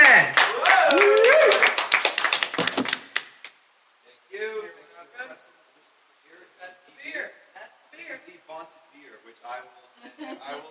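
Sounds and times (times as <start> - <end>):
audience clapping: 0.0 - 3.6.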